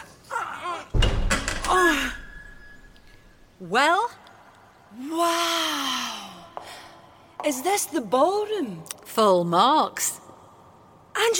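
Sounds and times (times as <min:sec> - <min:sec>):
heavy doors pushed open with a thud and rumbling scrape: 0:00.9 - 0:03.2
speech: 0:03.6 - 0:04.2, 0:04.9 - 0:06.0, 0:07.4 - 0:10.2, 0:11.2 - 0:11.3.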